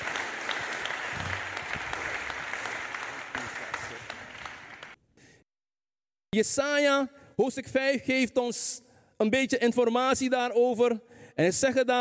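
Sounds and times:
audience applause for a pastor: 0:00.0 - 0:05.0
speech: 0:06.4 - 0:11.9.

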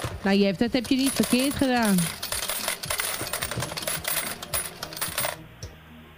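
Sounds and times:
speech: 0:00.2 - 0:02.2
coins clattering into a metal tray as a prize payout: 0:00.7 - 0:05.4.

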